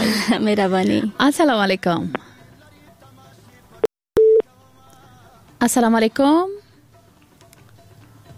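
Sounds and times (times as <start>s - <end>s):
speech: 0.2s - 2.2s, 5.6s - 6.6s
telephone beep from a call failing to connect: 4.2s - 4.4s.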